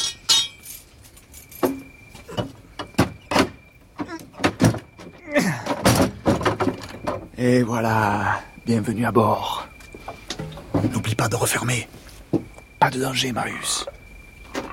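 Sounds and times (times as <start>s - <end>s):
door with a tough lock being taken off its hinges: 0.0s - 7.4s, 10.2s - 11.0s
speech: 7.4s - 9.7s, 11.2s - 12.0s, 12.8s - 13.9s.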